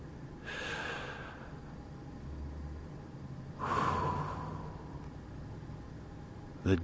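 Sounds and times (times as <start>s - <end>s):
deep breathing in and out: 0.4s - 2.0s, 3.5s - 5.5s
speech: 6.6s - 6.8s.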